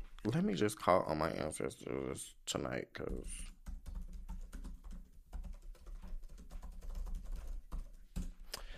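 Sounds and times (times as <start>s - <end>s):
speech: 0.2s - 3.5s
rapid typing on a computer keyboard while a note is entered: 3.4s - 8.4s.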